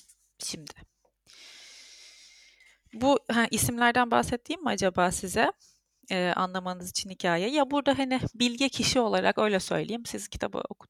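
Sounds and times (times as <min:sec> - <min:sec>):
speech: 0:00.5 - 0:00.9, 0:02.9 - 0:10.8
deep breath in: 0:01.3 - 0:02.8.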